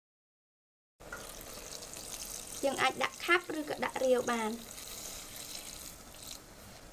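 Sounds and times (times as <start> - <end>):
water poured into a cooking pot of stir-fried meat: 1.1 - 6.5
speech: 2.6 - 4.8.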